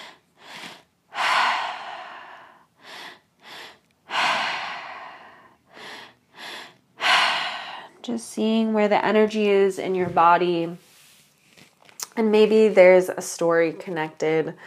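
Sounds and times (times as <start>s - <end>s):
deep breathing in and out into the belly and chest during a guided breathing exercise: 0.0s - 8.0s
speech: 8.0s - 10.8s, 12.2s - 14.6s.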